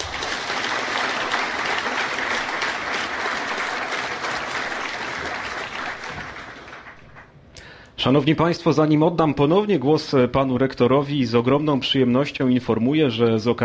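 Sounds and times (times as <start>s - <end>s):
audience applause welcoming new students at a university matriculation ceremony: 0.0s - 7.4s
speech: 8.0s - 13.6s.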